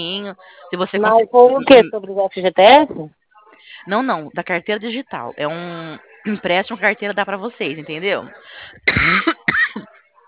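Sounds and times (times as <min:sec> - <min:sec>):
speech: 0:00.0 - 0:03.2, 0:03.8 - 0:09.9
person with a cough coughing during a phone call: 0:08.8 - 0:10.0.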